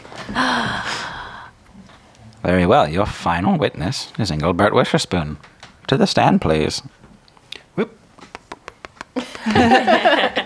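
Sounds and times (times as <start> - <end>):
group of people gasping: 0.2 - 1.6
speech: 0.3 - 0.9, 2.4 - 7.0, 7.8 - 8.0, 9.2 - 10.4
laughter: 9.2 - 10.4.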